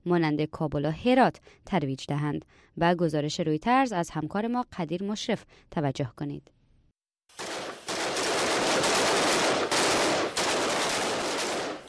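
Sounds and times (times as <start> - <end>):
speech: 0.0 - 6.6
automatic gunfire from police shooting practice: 7.4 - 11.8.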